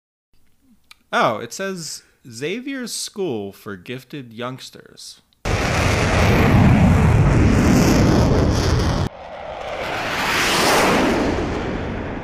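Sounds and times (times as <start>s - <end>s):
speech: 1.1s - 5.2s
jet aircraft roaring in the backyard of a school: 5.5s - 12.2s
rushing whoosh of jet aircraft passing by: 5.5s - 12.2s.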